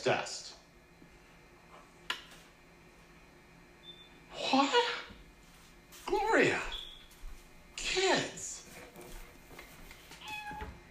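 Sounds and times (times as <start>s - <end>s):
speech: 0.0s - 0.5s, 4.4s - 5.0s, 6.1s - 6.7s
faint hum: 0.0s - 10.8s
cat meowing: 10.2s - 10.8s.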